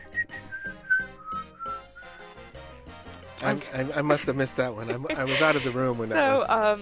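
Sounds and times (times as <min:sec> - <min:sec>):
bright whistled melody: 0:00.0 - 0:02.4
steady backing of drums and instruments: 0:00.0 - 0:06.8
speech: 0:03.4 - 0:06.8
laughter: 0:03.6 - 0:06.8.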